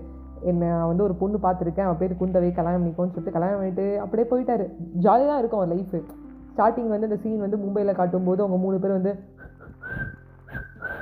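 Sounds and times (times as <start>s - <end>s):
speech: 0.4s - 9.5s
person whistling a tune in a film scene: 9.4s - 11.0s.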